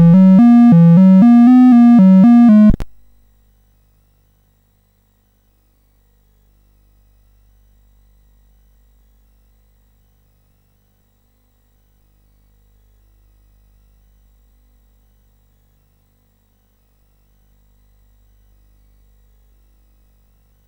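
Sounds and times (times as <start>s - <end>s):
chiptune music on CSG8580R5 SID chip: 0.0s - 2.8s.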